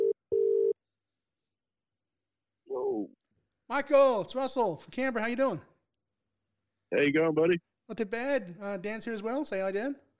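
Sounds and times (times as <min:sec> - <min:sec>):
phone line ringing tone from the caller's end: 0:00.0 - 0:00.7
speech: 0:03.7 - 0:05.7, 0:06.9 - 0:10.0.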